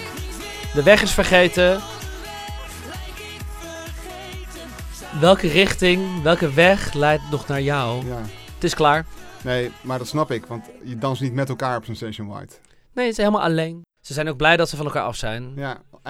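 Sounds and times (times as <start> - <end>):
steady clear beat: 0.0 - 2.8, 5.0 - 11.9
pop song with sung vocal melody: 0.0 - 13.1
laughter: 0.0 - 13.3
speech: 0.7 - 1.9, 5.2 - 16.0.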